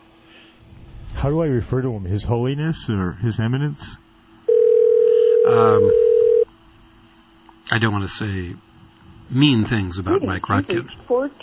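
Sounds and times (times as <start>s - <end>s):
speech: 1.2s - 4.0s, 5.5s - 6.0s, 7.7s - 8.7s, 9.3s - 11.4s
steady loud telephone tone: 4.5s - 6.5s.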